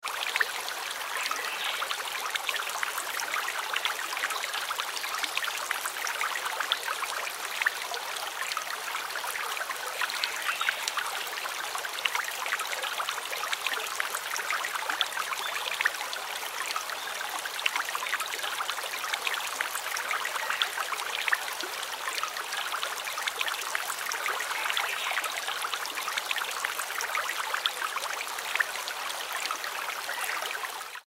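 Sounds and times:
river water flowing gently and calmly: 0:00.0 - 0:31.0.

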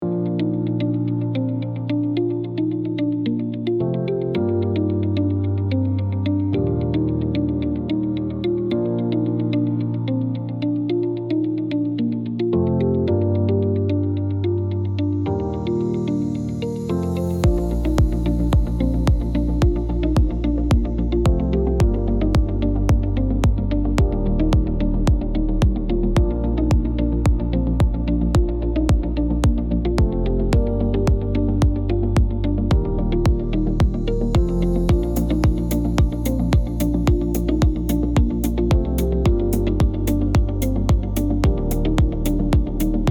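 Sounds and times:
elegant corporate music: 0:00.0 - 0:43.0.

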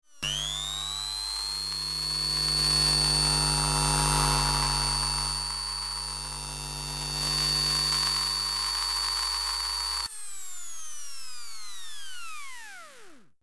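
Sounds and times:
grinder electromagnetic textures: 0:00.2 - 0:10.1.

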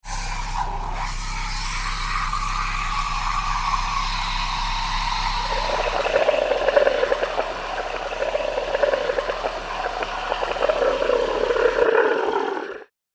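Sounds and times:
milk frother bubbling milk: 0:00.2 - 0:12.9.

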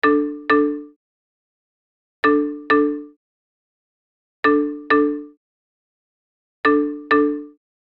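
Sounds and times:
smartphone ringing with modern ringtone: 0:00.0 - 0:01.0, 0:02.3 - 0:03.2, 0:04.5 - 0:05.4, 0:06.7 - 0:07.6.

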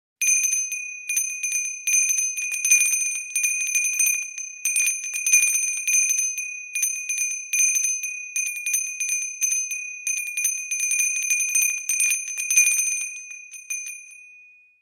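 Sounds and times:
small handbell ringing: 0:00.2 - 0:14.8.

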